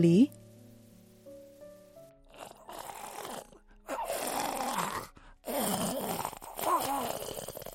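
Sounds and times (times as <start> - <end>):
speech: 0.0 - 0.4
patient's wet gurgling phlegm rattling in throat with labored breath: 2.3 - 7.7.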